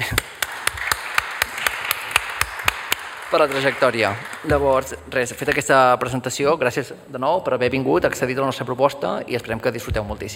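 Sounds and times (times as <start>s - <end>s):
applause at a presentation event: 0.0s - 5.2s
speech: 3.3s - 10.3s.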